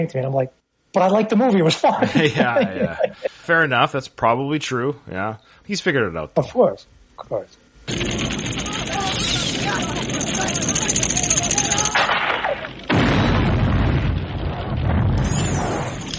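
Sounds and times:
speech: 0.0s - 8.2s
laughter: 1.8s - 3.4s
heavy explosions from trick arrowheads in a movie scene: 7.9s - 16.1s.

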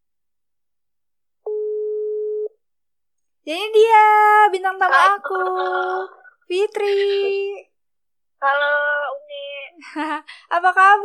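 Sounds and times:
telephone tone while dialing: 1.5s - 2.6s
speech: 3.4s - 7.7s, 8.4s - 9.1s, 9.8s - 11.0s
laughter: 4.8s - 7.6s.

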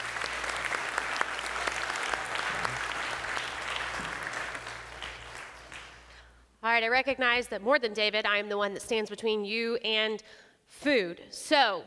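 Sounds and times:
crowd applauding a family just baptized: 0.0s - 6.2s
speech: 6.8s - 11.8s.

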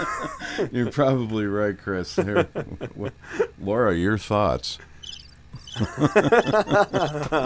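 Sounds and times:
laughter: 0.0s - 0.7s, 2.2s - 3.6s, 5.8s - 7.4s
speech: 0.6s - 4.9s, 5.8s - 7.4s
cricket chirping sound effect: 5.0s - 6.5s.

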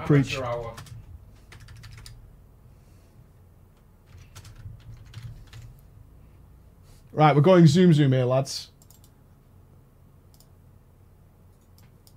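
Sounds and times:
steady low hum: 0.0s - 12.1s
speech: 0.1s - 0.8s, 7.2s - 8.7s
typing on a computer keyboard: 0.4s - 2.2s, 4.1s - 5.8s, 8.8s - 9.1s.

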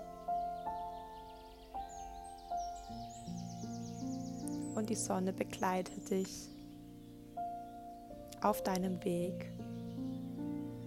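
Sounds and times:
birds chirping and twittering in a forest: 0.0s - 10.8s
speech: 4.8s - 6.5s, 8.4s - 9.7s.

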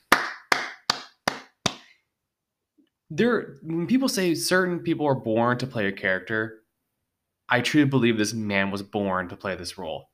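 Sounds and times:
sharp hand claps: 0.0s - 2.0s
speech: 3.1s - 6.6s, 7.5s - 10.1s.

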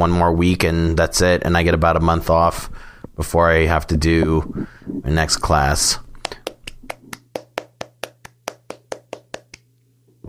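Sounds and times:
speech: 0.0s - 6.4s
low hum: 0.0s - 10.2s
one person clapping quickly and steadily: 6.2s - 9.7s.

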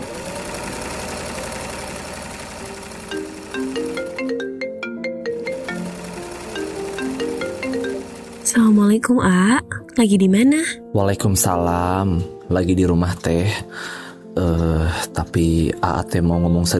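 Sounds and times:
mobile phone ringtone for an incoming call: 3.2s - 8.2s
speech: 8.5s - 16.7s.

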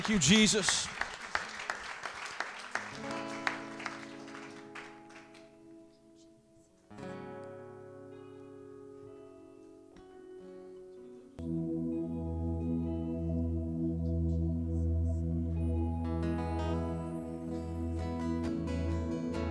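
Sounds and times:
speech: 0.0s - 1.0s
crowd clapping: 0.0s - 6.0s
sustained organ-like chords: 0.0s - 19.4s.

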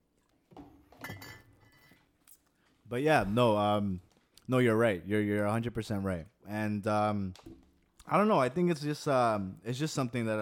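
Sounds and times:
glasses clinking in a toast: 1.0s - 2.0s
speech: 2.9s - 10.4s.

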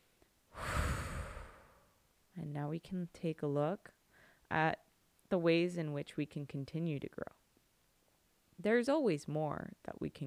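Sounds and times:
deep breath: 0.5s - 2.0s, 4.1s - 4.5s
speech: 2.5s - 7.4s, 8.6s - 10.2s.

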